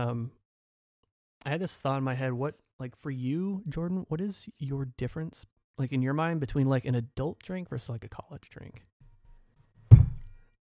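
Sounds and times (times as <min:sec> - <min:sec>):
speech: 0:00.0 - 0:00.4, 0:01.4 - 0:08.9
leg kicking a coffee table leg: 0:09.9 - 0:10.3.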